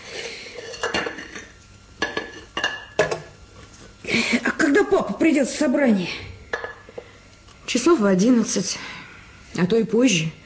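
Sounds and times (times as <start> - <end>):
ceramic plates clinking while washing and drying dishes: 0.2 - 3.4, 6.5 - 7.1
soft clatter of dishware being handled: 0.6 - 3.3
speech: 4.9 - 6.3, 7.8 - 9.0, 9.6 - 10.4.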